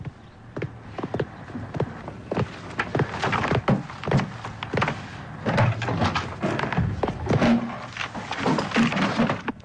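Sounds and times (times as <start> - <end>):
books rummaged in a drawer at home: 2.4 - 9.6.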